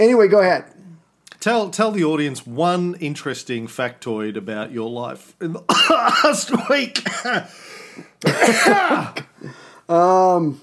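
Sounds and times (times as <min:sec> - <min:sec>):
speech: 0:00.0 - 0:00.7, 0:01.4 - 0:10.6
person coughing harshly: 0:05.7 - 0:09.6.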